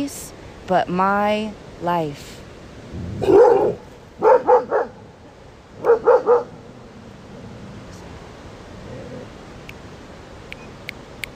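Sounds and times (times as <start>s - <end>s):
speech: 0.0s - 2.3s
dogs barking: 3.2s - 5.0s, 5.8s - 6.6s.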